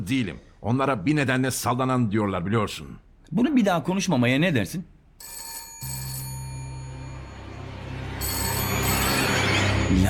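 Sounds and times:
speech: 0.0 - 5.4
telephone ringing with bright electronic tone: 5.2 - 10.0.

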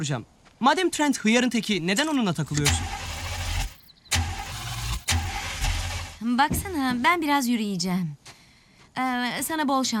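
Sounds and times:
speech: 0.0 - 3.0, 6.3 - 8.2, 9.0 - 9.9
car engine being started: 2.5 - 6.7.

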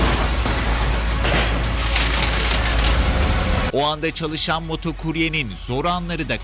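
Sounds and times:
tennis-ball-sized hailstones striking cars and roofs: 0.0 - 3.6
speech: 3.8 - 6.4.

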